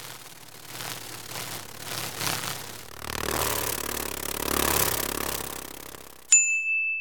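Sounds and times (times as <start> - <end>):
dragonfly wings whirring: 0.0 - 6.3
bright chime: 6.3 - 6.9.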